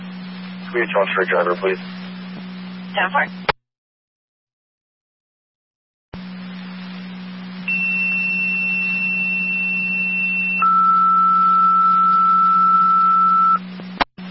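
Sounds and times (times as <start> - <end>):
steady hum: 0.0 - 3.6, 6.2 - 14.3
speech: 0.7 - 2.1, 2.9 - 3.5
fire dispatch radio paging tones for an EMS call: 7.7 - 13.6.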